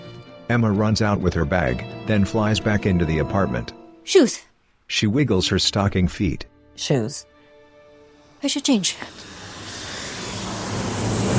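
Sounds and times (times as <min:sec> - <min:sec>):
speech: 0:00.5 - 0:07.3, 0:08.4 - 0:09.4
passenger airplane flying overhead: 0:08.8 - 0:11.3.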